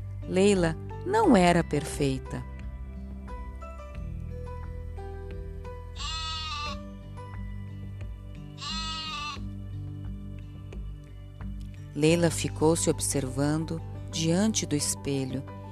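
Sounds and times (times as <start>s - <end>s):
music: 0.0s - 15.7s
speech: 0.3s - 2.5s, 12.0s - 15.6s
sheep bleating: 6.0s - 6.8s, 8.6s - 9.4s.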